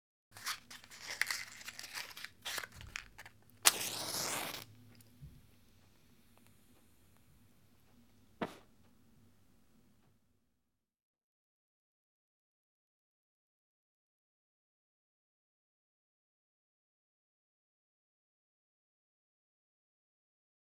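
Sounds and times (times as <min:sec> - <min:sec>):
match being struck: 0:00.4 - 0:05.2, 0:08.2 - 0:08.7
match being blown out: 0:00.4 - 0:07.6, 0:08.2 - 0:08.8.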